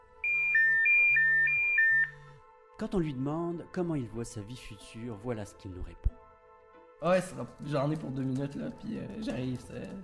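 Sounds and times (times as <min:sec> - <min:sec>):
alarm clock electronic melody of two alternating high notes: 0:00.2 - 0:02.4
speech: 0:02.8 - 0:06.2, 0:07.0 - 0:10.0.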